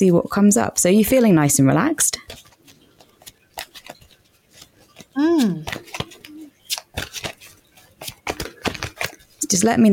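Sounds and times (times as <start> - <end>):
speech: 0.0 - 2.4, 5.2 - 5.8, 9.5 - 9.9
tarot cards being shuffled during a tarot reading: 2.2 - 9.9.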